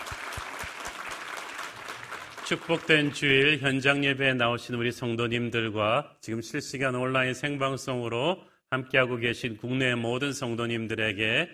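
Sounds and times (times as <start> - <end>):
crowd applauding in a large room: 0.0 - 3.6
speech: 2.5 - 11.5.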